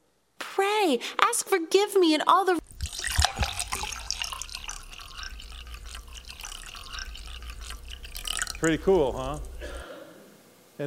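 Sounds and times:
speech: 0.8 - 2.6, 8.6 - 9.5
dirty water pouring in a steady trickle: 2.6 - 9.9.

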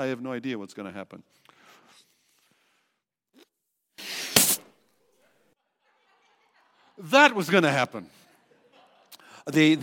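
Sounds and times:
speech: 0.0 - 1.6, 7.0 - 8.2, 9.5 - 9.8
old rubber balloon giving out during inflation: 4.0 - 4.8
laughter: 5.6 - 7.4, 8.1 - 9.8.

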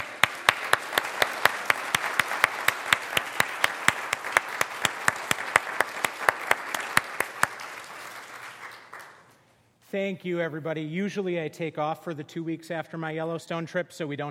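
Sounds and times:
sharp evenly spaced claps: 0.0 - 9.4
speech: 9.9 - 14.2.

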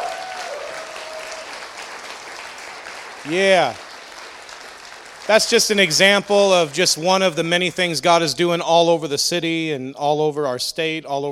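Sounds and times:
crowd clapping at a religious gathering: 0.0 - 8.0
speech: 3.2 - 3.8, 5.3 - 11.3.

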